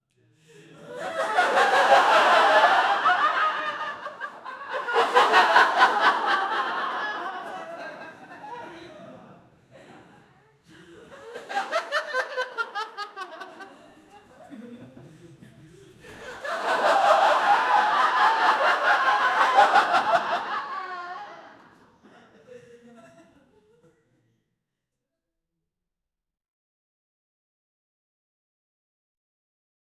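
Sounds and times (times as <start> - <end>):
large audience laughing: 0.6 - 23.9.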